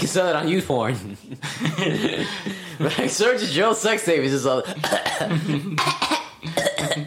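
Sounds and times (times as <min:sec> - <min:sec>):
speech: 0:00.1 - 0:06.3
laughter: 0:00.8 - 0:03.8, 0:05.2 - 0:05.8
person coughing harshly: 0:04.7 - 0:07.0.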